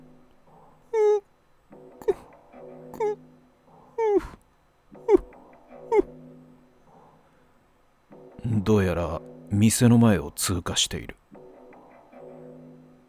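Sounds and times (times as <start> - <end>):
high eerie woman's sobbing: 1.0 - 1.2, 2.0 - 2.3, 3.0 - 3.2, 4.0 - 4.4, 5.0 - 6.2
speech: 8.6 - 11.2.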